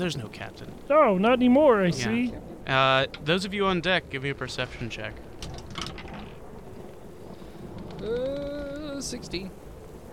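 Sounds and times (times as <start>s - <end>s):
speech: 0.0s - 5.3s, 8.0s - 9.6s
stormy rain and wind: 0.0s - 10.1s
drawn-out moaning creaking tone: 5.4s - 9.0s.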